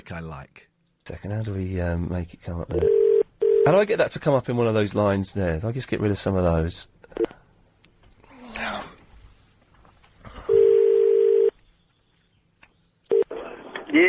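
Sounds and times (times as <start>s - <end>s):
speech: 0.1s - 3.0s, 3.6s - 7.4s
telephone line beep as someone dials out: 2.8s - 3.7s, 10.5s - 11.5s
quiet rustling: 8.9s - 12.6s.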